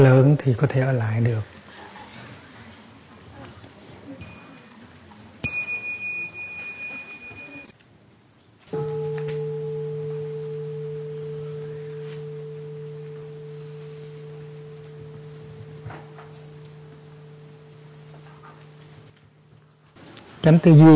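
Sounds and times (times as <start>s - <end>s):
speech: 0.0s - 1.6s, 20.4s - 20.9s
meditation bell ringing: 4.2s - 7.7s, 8.8s - 19.8s.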